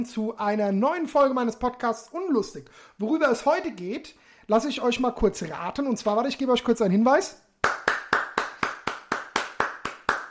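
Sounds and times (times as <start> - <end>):
speech: 0.0 - 7.4
single person clapping hands: 7.6 - 10.2.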